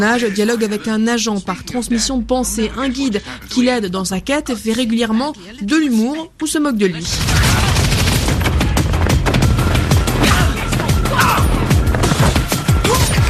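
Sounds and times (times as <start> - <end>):
speech: 0.0 - 7.4
video game gunfire in a shooter set in post-Brexit England: 7.0 - 13.2.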